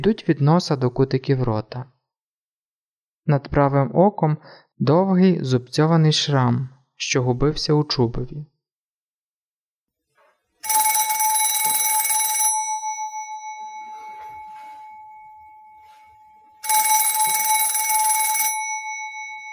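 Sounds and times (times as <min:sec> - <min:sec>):
speech: 0:00.0 - 0:01.9, 0:03.2 - 0:08.5
telephone bell ringing in rattling bursts: 0:10.6 - 0:19.5.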